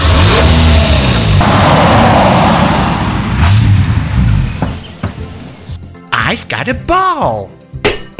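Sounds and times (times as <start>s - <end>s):
car engine revving loudly: 0.0s - 5.8s
speech: 6.6s - 7.8s.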